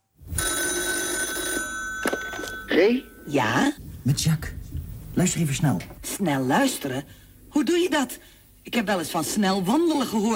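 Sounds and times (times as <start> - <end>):
telephone bell ringing: 0.3 - 3.4
speech: 2.7 - 4.6, 5.2 - 10.3.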